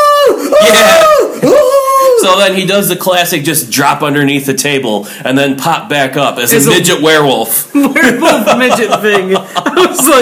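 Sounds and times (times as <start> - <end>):
person imitating a high-pitched scream: 0.0 - 2.3
speech: 2.2 - 10.2
laughter: 7.7 - 10.2.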